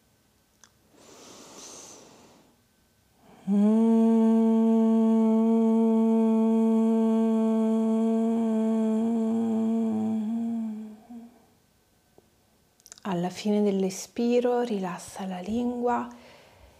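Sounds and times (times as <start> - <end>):
faint breath: 0.9 - 2.6, 16.1 - 16.7
closed-mouth hum of om during meditation: 3.2 - 11.5
speech: 3.5 - 3.9, 13.4 - 16.2.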